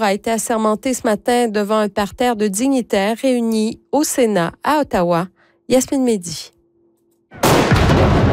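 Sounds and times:
speech: 0.0 - 6.6
ceremonial salute cannon blast: 7.3 - 8.3.

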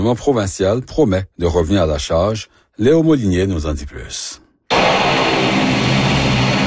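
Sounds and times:
speech: 0.0 - 5.6
airplane engine at takeoff thrust at the lakeshore airport in Toronto: 4.7 - 6.6.

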